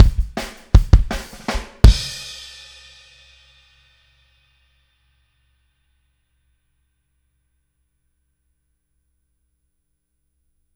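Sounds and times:
kick drum: 0.0 - 2.2.

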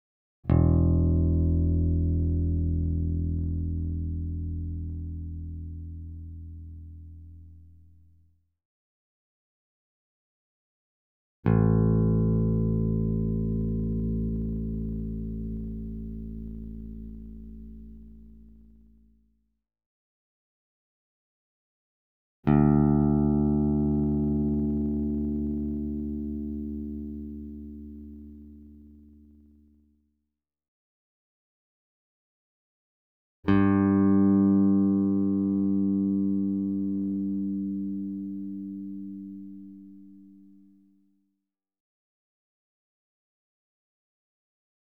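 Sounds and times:
bass guitar notes E1 A1 D2 G2 played with plectrum: 0.5 - 7.8, 11.5 - 19.0, 22.5 - 29.5, 33.5 - 40.6.

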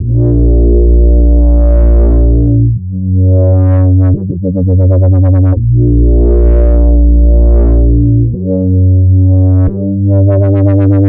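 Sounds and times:
drum and bass bass line: 0.0 - 11.0.

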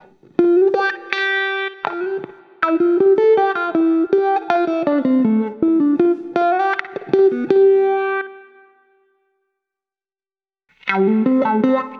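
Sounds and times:
wah wah guitar: 0.0 - 8.6, 10.8 - 11.9.

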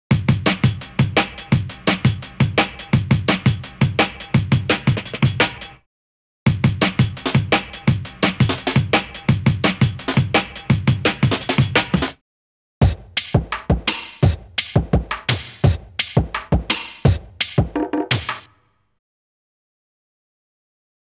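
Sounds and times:
jungle breakbeat: 0.2 - 5.8, 6.5 - 12.2, 12.8 - 18.5.

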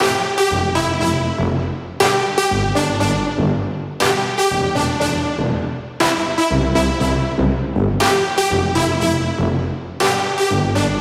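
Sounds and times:
brass instrument loop in C major: 0.0 - 10.9.

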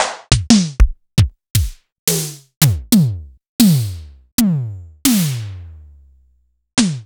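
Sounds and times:
Simmons SDS5 drum kits: 0.3 - 5.8.

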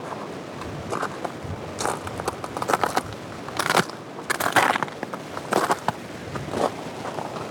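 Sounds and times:
footsteps on ice on a glacier outdoors: 0.9 - 7.4.

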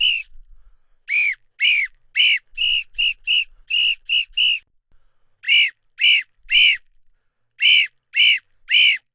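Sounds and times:
murga whistle at 110 bpm: 0.0 - 0.3, 1.1 - 4.6, 5.4 - 6.8, 7.6 - 9.1.

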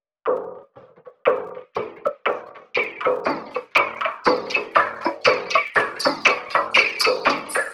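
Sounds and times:
frame drum loop: 0.3 - 7.7.

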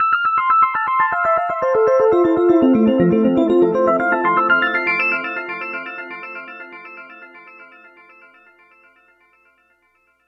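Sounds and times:
Rhodes keys lick with echo: 1.1 - 7.7.

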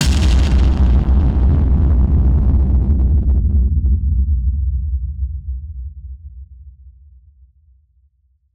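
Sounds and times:
drum bomb: 0.0 - 4.5.

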